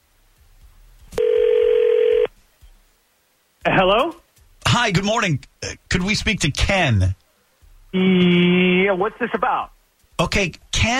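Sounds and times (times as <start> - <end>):
ringback tone from an outgoing phone call: 1.2 - 2.3
speech: 4.8 - 7.2, 7.9 - 10.9.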